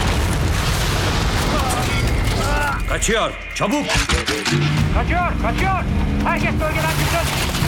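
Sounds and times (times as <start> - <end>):
rockets being fired and exploding: 0.0 - 2.6
speech: 3.0 - 7.5.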